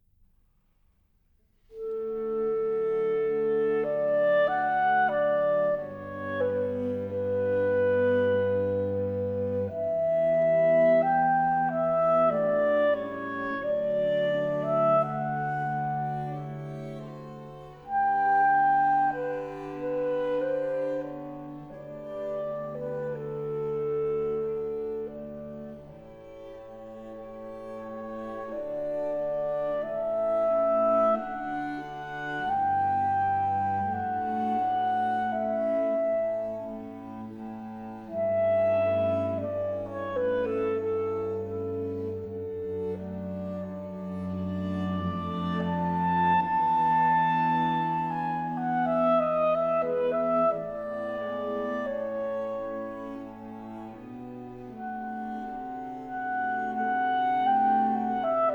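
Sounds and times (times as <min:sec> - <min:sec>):
clarinet playing a larghetto: 0:01.7 - 0:58.5.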